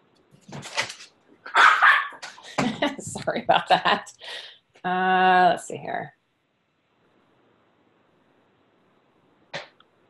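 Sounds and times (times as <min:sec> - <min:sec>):
dog barking: 0:01.5 - 0:02.2
speech: 0:03.2 - 0:06.2.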